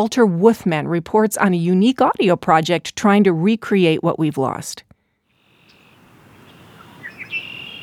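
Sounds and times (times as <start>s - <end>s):
speech: 0.0s - 4.9s
steady outdoor hiss: 5.1s - 7.8s
newly arrived migrating birds chirping at a wetland refuge: 5.4s - 7.8s
migrating bird sustained high whistling note: 5.7s - 7.8s.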